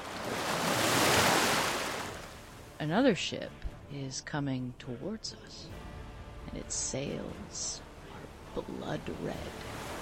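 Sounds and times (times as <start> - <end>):
surf washing at sea: 0.0 - 2.5, 7.6 - 10.0
speech: 2.8 - 5.9, 6.5 - 7.8, 8.5 - 9.8.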